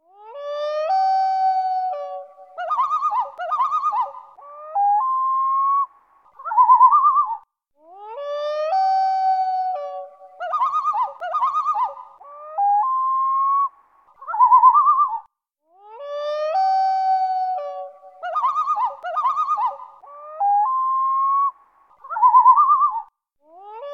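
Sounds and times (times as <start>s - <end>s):
common loon: 0.5s - 7.4s, 8.4s - 13.6s, 16.2s - 23.1s.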